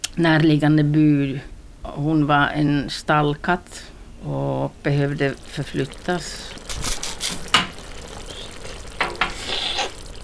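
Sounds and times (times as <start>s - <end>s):
speech: 0.2s - 6.9s
eggs sizzling in spicy vegetable stew on a home kitchen stove: 3.3s - 10.2s
stirring or scraping in shakshuka: 5.2s - 10.2s.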